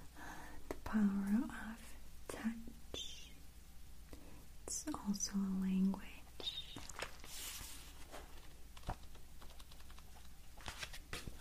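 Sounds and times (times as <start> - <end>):
speech: 0.9 - 1.8, 4.8 - 6.2
paper being handled with crinkles and rustles: 6.7 - 9.2, 9.9 - 11.4.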